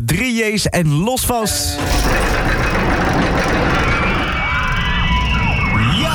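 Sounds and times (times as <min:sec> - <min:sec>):
speech: 0:00.0 - 0:02.7
roller coaster running at an amusement park: 0:01.8 - 0:06.1.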